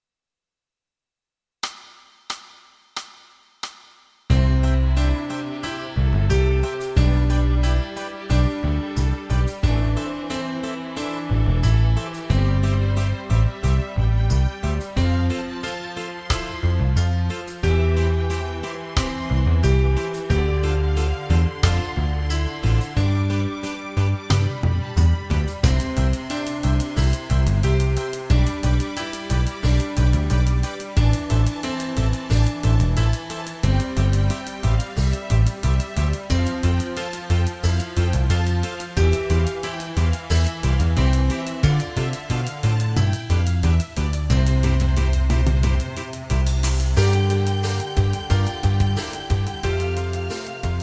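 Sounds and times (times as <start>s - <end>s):
piano tutti: 4.3s - 50.8s.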